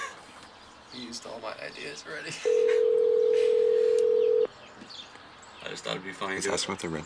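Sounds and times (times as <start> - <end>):
speech: 0.9 - 3.1, 5.7 - 7.0
telephone tone from a phone calling a movie theater info line: 2.4 - 4.5.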